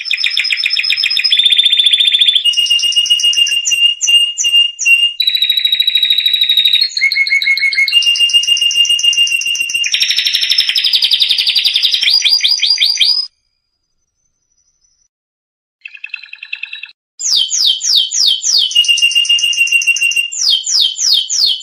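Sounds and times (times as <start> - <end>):
canary singing in quick changing tours: 0.0 - 13.3, 15.8 - 21.6.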